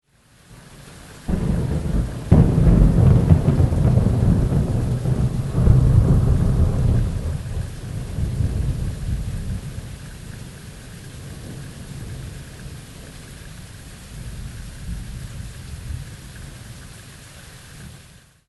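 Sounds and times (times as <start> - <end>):
big thunder boom: 1.3 - 9.9.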